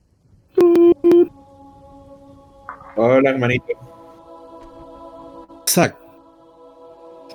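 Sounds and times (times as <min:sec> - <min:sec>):
quieter steady hum-like tone: 0:00.0 - 0:05.9
short loud electronic beeps like phone keypad tones: 0:00.6 - 0:01.3
speech: 0:03.0 - 0:04.0, 0:05.8 - 0:06.0.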